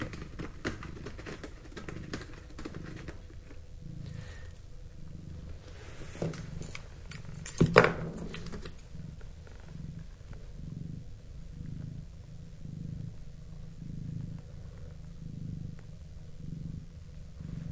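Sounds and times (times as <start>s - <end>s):
cat scratching a scratch pad: 0.0s - 3.6s
cat purring: 0.0s - 17.7s.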